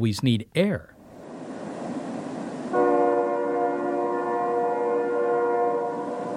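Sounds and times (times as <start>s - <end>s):
speech: 0.0s - 1.0s
low rumble of rail noise: 0.9s - 6.3s
distant train horn blowing one long steady chord: 2.7s - 6.3s.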